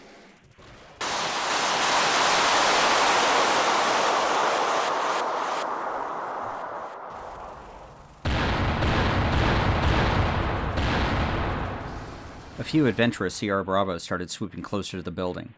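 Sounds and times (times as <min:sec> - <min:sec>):
missile battery firing into the sky: 0:00.5 - 0:12.9
speech: 0:12.7 - 0:15.5.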